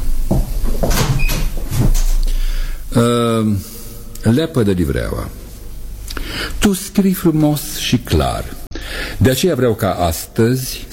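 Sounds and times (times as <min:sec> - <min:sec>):
door creaking shut: 0:00.6 - 0:02.3
speech: 0:03.0 - 0:05.4, 0:06.6 - 0:08.6, 0:09.2 - 0:10.9.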